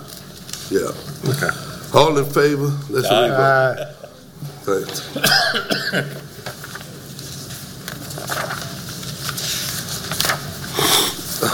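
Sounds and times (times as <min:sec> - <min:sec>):
low murmur of room noise: 0:00.0 - 0:11.5
speech: 0:00.7 - 0:04.1, 0:04.7 - 0:06.6
person sniffling: 0:10.7 - 0:11.5.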